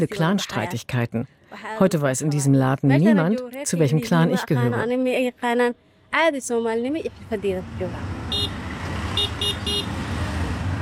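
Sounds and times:
speech: 0.0s - 8.3s
dense street traffic of motorized three-wheelers, trucks and cars in Mogadishu: 6.2s - 10.8s
short bright car horn toots: 8.3s - 10.0s.

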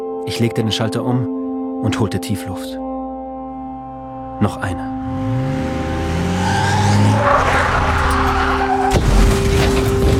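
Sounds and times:
speech: 0.2s - 2.8s, 4.4s - 5.5s
SUV engine roaring: 4.9s - 8.9s
tires squealing in a skid: 5.1s - 10.0s.

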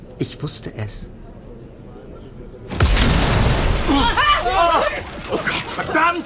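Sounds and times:
speech: 0.2s - 1.2s, 3.9s - 6.2s
crashing rattling debris from an explosion: 2.7s - 6.2s
windows shattering in an explosion: 2.7s - 6.2s
people shouting: 3.8s - 6.2s.

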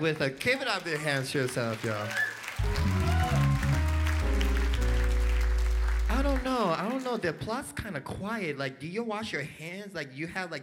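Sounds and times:
speech: 0.0s - 3.0s, 6.7s - 10.6s
crowd clapping: 0.0s - 7.4s
loud bass-heavy music: 2.6s - 6.6s.

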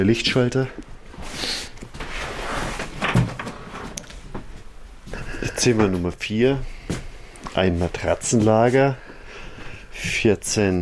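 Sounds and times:
speech: 0.0s - 1.6s, 5.6s - 6.7s, 7.6s - 9.0s, 10.0s - 10.7s
faint shuffling: 0.6s - 10.7s
door creaking with rustling handling noises: 2.6s - 4.2s.

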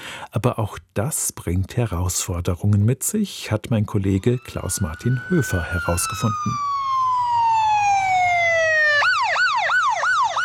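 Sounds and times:
speech: 0.4s - 7.0s
Seattle Fire Station ambulance siren on emergency call: 3.9s - 10.4s.

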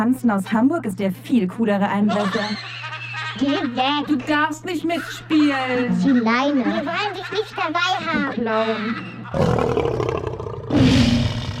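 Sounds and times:
speech: 0.0s - 2.8s, 3.4s - 10.0s
laughter: 1.9s - 9.5s
lions roaring: 9.3s - 11.5s.

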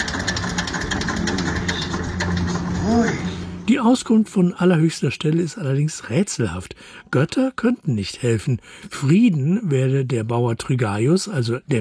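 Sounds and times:
tractor engine idling: 0.0s - 3.8s
speech: 3.8s - 11.7s.

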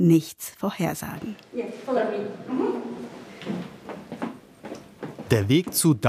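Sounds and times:
speech: 0.0s - 2.7s, 5.3s - 6.0s
old wooden floorboards creaking: 2.5s - 5.9s.

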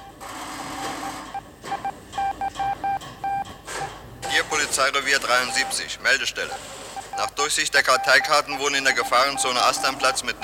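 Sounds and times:
telephone dial tone in a police headquarters telephone exchange: 0.0s - 3.4s, 4.2s - 5.8s, 6.4s - 10.4s
short evenly spaced electronic telephone dialing beeps: 0.0s - 3.5s, 5.3s - 5.8s, 6.4s - 7.3s, 7.9s - 10.4s
speech: 4.8s - 10.4s.

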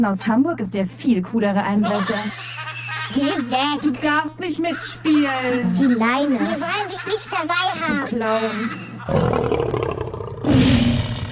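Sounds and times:
speech: 0.0s - 9.8s
laughter: 1.7s - 9.3s
lions roaring: 9.1s - 11.2s.

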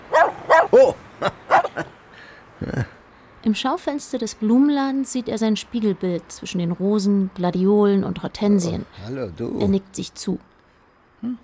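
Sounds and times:
dog barking: 0.0s - 1.9s
speech: 0.7s - 2.0s, 2.6s - 10.5s, 11.2s - 11.4s.

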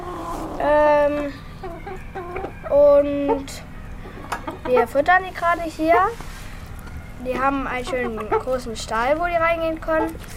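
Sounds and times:
chickens clucking: 0.0s - 10.3s
steady low hum: 0.0s - 10.3s
speech: 0.6s - 3.6s, 4.7s - 6.3s, 7.2s - 10.3s
rooster crowing: 1.6s - 2.9s.

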